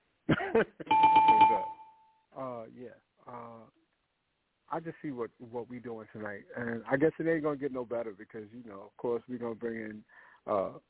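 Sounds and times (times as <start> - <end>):
speech: 0.3 - 1.8, 2.4 - 3.8, 4.7 - 10.8
bell sound effect ding: 0.9 - 2.2.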